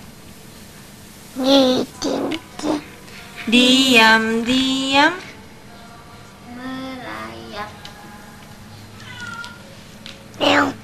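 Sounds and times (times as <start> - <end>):
low steady hum: 0.0 - 10.8
speech: 1.4 - 2.4, 3.5 - 5.3
cat giving a loud drawn-out meow: 9.0 - 9.7, 10.4 - 10.8.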